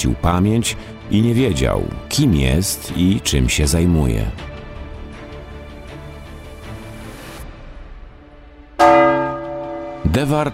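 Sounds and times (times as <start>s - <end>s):
speech: 0.0s - 4.5s, 10.1s - 10.5s
church bells ringing in the north tower of a church: 8.8s - 10.5s.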